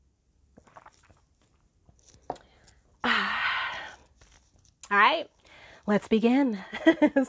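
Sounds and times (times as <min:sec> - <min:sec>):
person sipping and swallowing water: 0:00.5 - 0:05.5
speech: 0:04.9 - 0:07.2.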